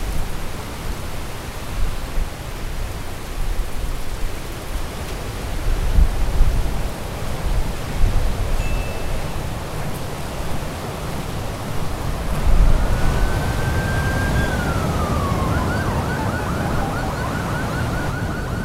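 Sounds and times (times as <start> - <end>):
ocean surf washing at night: 0.0 - 18.6
police car siren wailing and yelping: 12.0 - 18.6.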